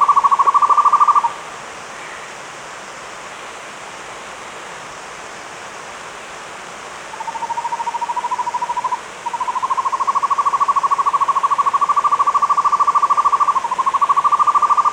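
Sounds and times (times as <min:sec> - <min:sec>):
buff-fronted owl trilling in the Andes: 0:00.0 - 0:01.4, 0:07.1 - 0:14.9.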